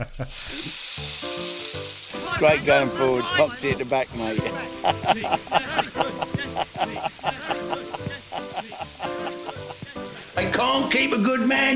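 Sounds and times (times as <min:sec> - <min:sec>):
speech: 0:00.0 - 0:00.8, 0:02.4 - 0:06.1, 0:10.7 - 0:11.7
food sizzling in a hot pan: 0:00.1 - 0:11.7
laughter: 0:02.2 - 0:10.6.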